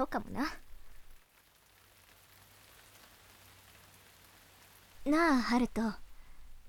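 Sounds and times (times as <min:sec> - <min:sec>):
speech: 0:00.0 - 0:00.6, 0:05.0 - 0:06.0
passing rain shower pouring on a surface: 0:00.0 - 0:06.6.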